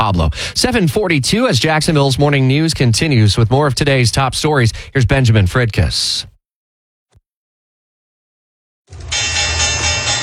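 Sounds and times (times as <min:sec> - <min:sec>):
speech: 0:00.1 - 0:06.3
Wall Street stock exchange opening bell ringing: 0:09.0 - 0:10.2.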